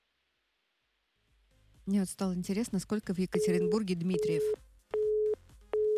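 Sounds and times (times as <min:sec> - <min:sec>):
speech: 0:01.9 - 0:04.6
short two-tone touch-tone beeps: 0:03.4 - 0:05.9.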